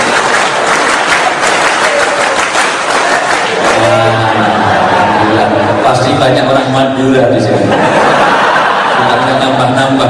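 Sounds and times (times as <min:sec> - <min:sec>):
large crowd doing an Indonesian scout clap routine: 0:00.0 - 0:05.4
laughter: 0:03.0 - 0:06.1, 0:07.4 - 0:10.0.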